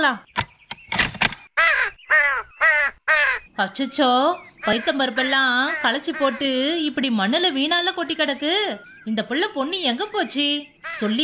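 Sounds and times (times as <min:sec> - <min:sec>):
speech: 0:00.0 - 0:00.3, 0:03.6 - 0:11.2
crows cawing loudly and harshly: 0:01.6 - 0:03.6, 0:04.3 - 0:07.8, 0:10.8 - 0:11.2.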